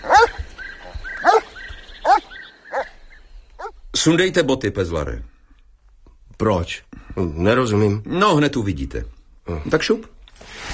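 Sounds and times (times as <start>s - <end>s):
dog whining: 0.0s - 0.4s, 1.2s - 2.9s
dog barking: 0.0s - 3.0s
speech: 4.0s - 5.3s, 6.4s - 10.2s.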